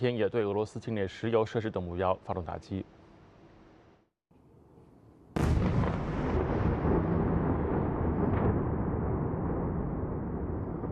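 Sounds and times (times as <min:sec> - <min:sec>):
speech: 0:00.0 - 0:03.0
loud blast from missile strike: 0:05.4 - 0:10.8.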